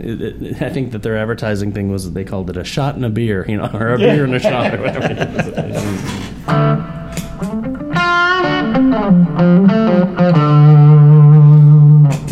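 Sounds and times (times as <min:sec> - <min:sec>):
speech: 0:00.0 - 0:07.7, 0:09.1 - 0:10.9
laughter: 0:03.6 - 0:06.4
overdriven electric guitar bending single notes through a boosted amp: 0:06.5 - 0:12.3.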